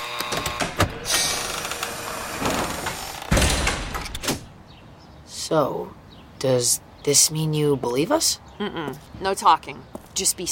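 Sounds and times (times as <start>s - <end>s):
door being opened: 0.0s - 4.6s
speech: 5.5s - 10.4s.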